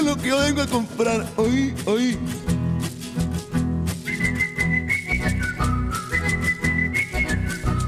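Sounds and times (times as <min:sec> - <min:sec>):
speech: 0:00.2 - 0:02.4
person whistling a tune: 0:04.0 - 0:07.8.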